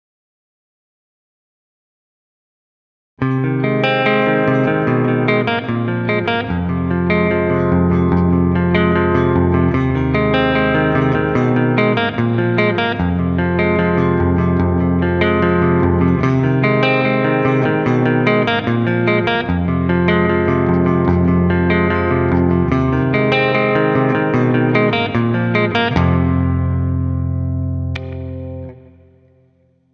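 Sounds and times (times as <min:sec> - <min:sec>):
clean electric guitar intro: 0:03.2 - 0:29.9.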